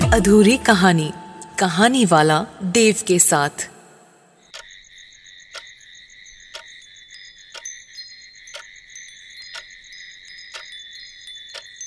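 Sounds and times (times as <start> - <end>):
speech: 0.2 - 3.7
crickets chirping at night: 0.6 - 11.8
sharp tick: 4.5 - 4.8, 5.5 - 5.7, 6.5 - 6.8, 7.5 - 7.8, 8.5 - 8.8, 9.5 - 9.8, 10.4 - 10.8, 11.5 - 11.8.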